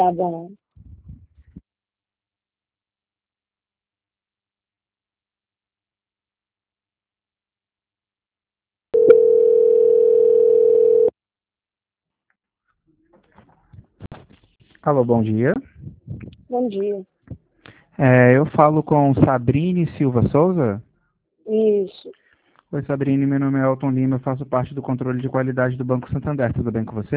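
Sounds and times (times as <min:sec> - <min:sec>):
speech: 0:00.0 - 0:00.6, 0:14.8 - 0:17.4, 0:18.0 - 0:20.9, 0:21.5 - 0:27.1
steady mid-pitched telephone line tone during call transfer: 0:09.0 - 0:11.1.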